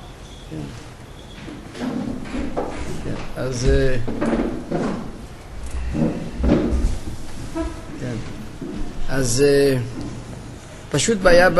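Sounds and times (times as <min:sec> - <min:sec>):
speech: 0:00.5 - 0:00.9, 0:01.5 - 0:05.0, 0:09.2 - 0:10.0, 0:10.9 - 0:11.5
footsteps shuffling: 0:00.6 - 0:10.8
chair being carried and set down: 0:01.3 - 0:09.1
wooden knocks and scrapes: 0:01.4 - 0:09.3.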